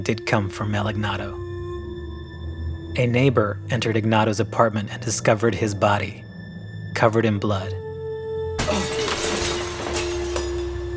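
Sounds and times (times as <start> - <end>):
speech: 0.0 - 1.4, 3.0 - 6.3, 7.0 - 7.8
steady low droning hum: 0.0 - 10.9
glass coffee table shattering as a man falls onto it: 8.6 - 10.9
scattering tinkling glass shards: 8.6 - 10.9.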